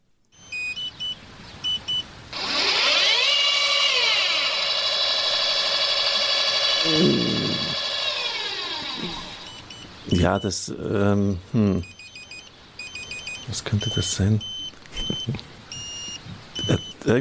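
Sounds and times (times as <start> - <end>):
electronic beeps from broadcast van satellite dish: 0.4 - 2.0, 9.0 - 10.6, 11.8 - 17.0
satellite dish motor whine with harmonic tones sweeping up and down: 2.3 - 9.8
speech: 6.9 - 7.4, 10.3 - 12.0, 13.5 - 15.5, 16.7 - 17.2.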